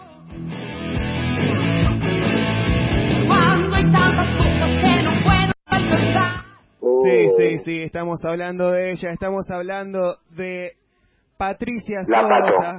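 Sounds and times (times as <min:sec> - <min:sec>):
loud dense rock song with full band: 0:00.3 - 0:06.3
speech: 0:07.4 - 0:10.8, 0:11.4 - 0:12.7.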